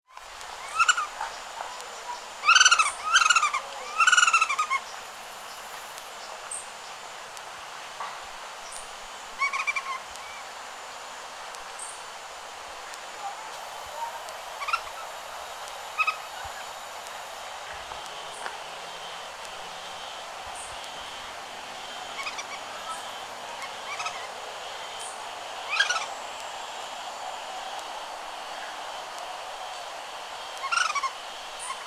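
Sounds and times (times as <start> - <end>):
Myiarchus apicalis calling: 0.1 - 6.7, 13.2 - 28.8, 29.7 - 31.8.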